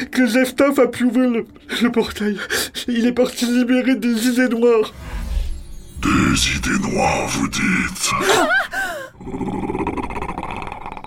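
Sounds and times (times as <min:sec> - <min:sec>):
speech: 0:00.0 - 0:05.2, 0:06.0 - 0:10.0
gigantic grey wolf snarling and growling: 0:09.2 - 0:11.0.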